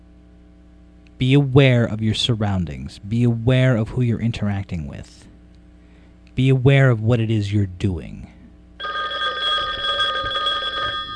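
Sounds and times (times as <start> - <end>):
speech: 1.2 - 5.3, 6.4 - 8.4
telephone ringing with bright electronic tone: 8.8 - 11.1.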